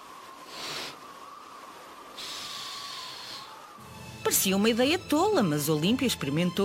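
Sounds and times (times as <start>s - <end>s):
breathy blowing of air: 0.3s - 3.8s
speech: 4.3s - 6.6s.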